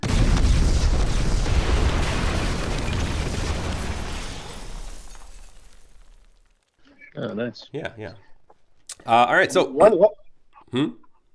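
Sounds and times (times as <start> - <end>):
loud rumbling explosion with crackling debris: 0.0 - 6.5
speech: 7.2 - 8.3, 9.0 - 11.0.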